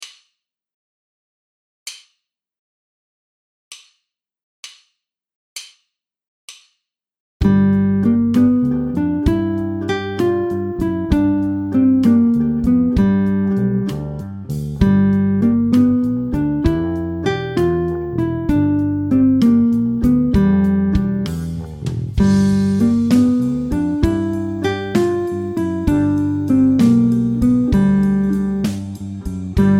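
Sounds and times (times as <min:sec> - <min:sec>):
guitar riff: 0:07.4 - 0:29.7.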